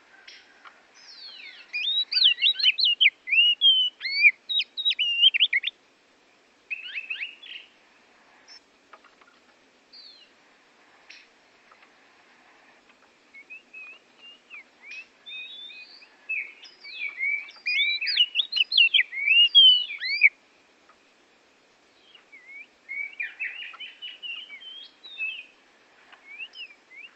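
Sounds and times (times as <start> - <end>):
Bornean Oriental magpie-robin singing rapid varied whistles and chirps: 0.0 - 5.8, 6.7 - 7.8, 9.9 - 10.4, 13.3 - 21.0, 21.9 - 27.1.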